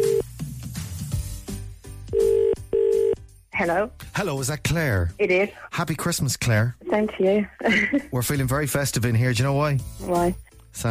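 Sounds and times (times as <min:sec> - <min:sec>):
phone ringback tone through the line as a call is dialed: 0:00.0 - 0:00.3, 0:02.1 - 0:03.2
speech: 0:03.6 - 0:10.8.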